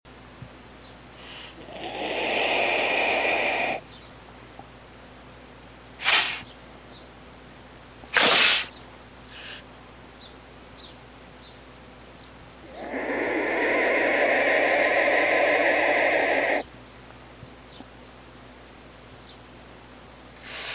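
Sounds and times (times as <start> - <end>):
vulture: 1.2 - 3.8, 6.0 - 6.5, 12.6 - 16.7, 20.4 - 20.7.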